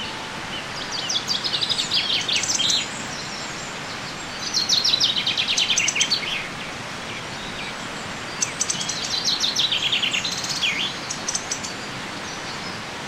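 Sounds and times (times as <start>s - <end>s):
common chaffinch Fringilla coelebs song: 0.0s - 13.0s.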